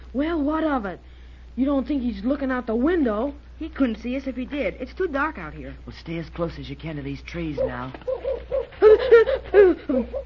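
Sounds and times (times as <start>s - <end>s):
speech: 0.1s - 8.3s, 9.0s - 10.2s
owl hooting in a tree at night: 7.5s - 10.2s.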